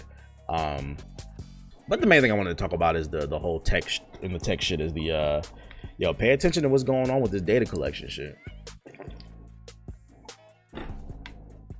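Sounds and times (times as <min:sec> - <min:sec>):
speech: 0:00.5 - 0:08.5
person taking a swig of water: 0:08.7 - 0:11.6.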